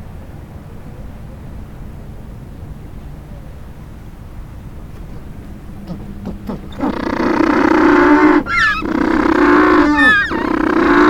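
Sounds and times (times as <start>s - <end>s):
penguin long harsh braying drone: 5.7s - 11.0s
penguin quick rising squeals: 5.8s - 11.0s.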